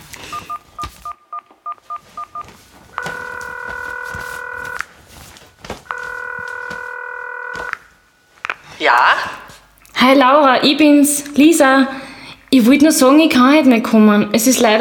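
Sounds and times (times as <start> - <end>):
mobile phone keypad tones while dialing a number: 0.2 - 4.9, 5.9 - 7.9
mobile phone long steady ringing tones: 0.3 - 8.3
speech: 8.9 - 9.3, 10.0 - 14.8.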